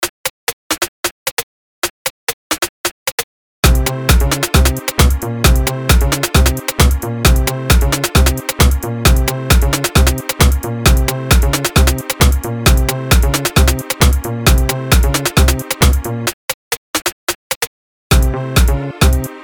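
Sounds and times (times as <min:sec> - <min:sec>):
crazy machine gun techno music: 0:03.6 - 0:16.4, 0:18.1 - 0:19.4.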